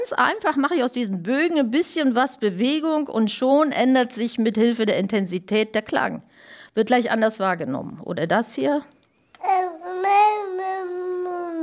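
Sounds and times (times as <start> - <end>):
speech: 0.0 - 10.2
two-month-old infant babbling pseudo-vowels: 9.4 - 11.6.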